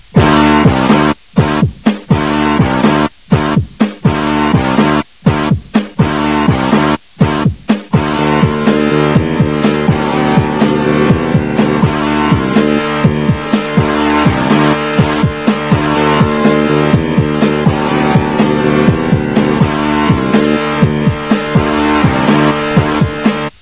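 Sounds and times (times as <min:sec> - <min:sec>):
downtown rock music: 0:00.1 - 0:23.6.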